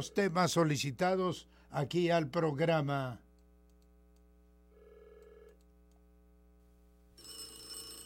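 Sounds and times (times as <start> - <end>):
speech: 0.0 - 3.2
telephone bell ringing: 4.8 - 5.6, 7.2 - 8.0.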